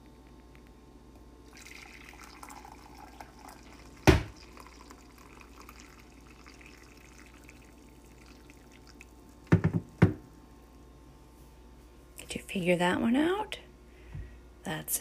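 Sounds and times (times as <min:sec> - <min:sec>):
tea being poured into a cup: 0:01.4 - 0:10.0
speech: 0:12.5 - 0:13.6, 0:14.7 - 0:14.9.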